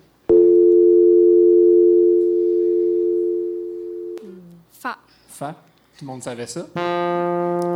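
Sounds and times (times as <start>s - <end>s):
telephone dial tone: 0.3s - 4.2s
speech: 4.9s - 7.7s.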